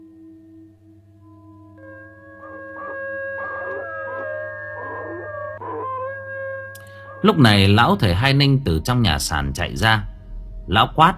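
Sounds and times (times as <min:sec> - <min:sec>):
low hum: 0:00.0 - 0:11.1
creature howling in a garden: 0:02.5 - 0:07.2
speech: 0:07.2 - 0:10.1, 0:10.7 - 0:11.1.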